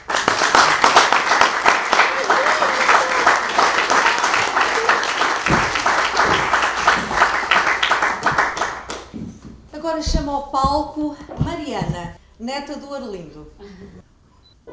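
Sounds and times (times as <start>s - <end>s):
audience applause at a theatre celebration: 0.0s - 9.4s
speech: 10.0s - 14.1s.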